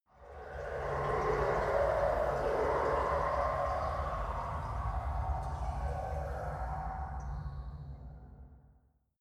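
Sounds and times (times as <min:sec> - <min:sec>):
rain: 0:00.2 - 0:07.2
dark mechanical ambience: 0:00.2 - 0:08.1.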